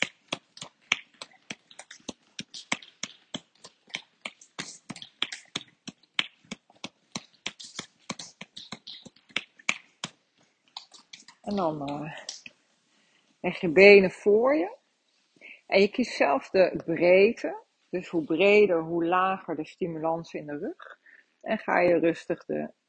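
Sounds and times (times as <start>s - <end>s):
hand firmly tapping the sole of a foot: 0.0s - 12.6s
speech: 11.5s - 12.3s, 13.4s - 14.8s, 15.7s - 20.9s, 21.5s - 22.8s.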